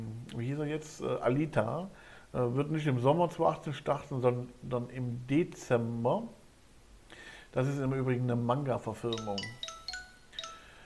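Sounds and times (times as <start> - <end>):
speech: 0.4 - 6.4, 7.5 - 9.6
mobile phone notification chime: 9.1 - 10.8.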